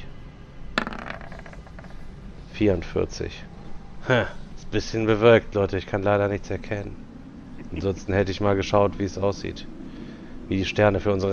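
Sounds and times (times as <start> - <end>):
dice clattering on a surface: 0.8 - 2.0
speech: 2.6 - 7.1, 7.7 - 9.8, 10.5 - 11.3.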